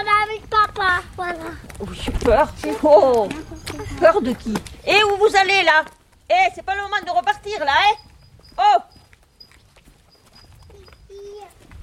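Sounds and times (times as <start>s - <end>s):
hooves of cows moving with soft thuds and scuffs: 0.0s - 11.8s
speech: 1.2s - 8.9s.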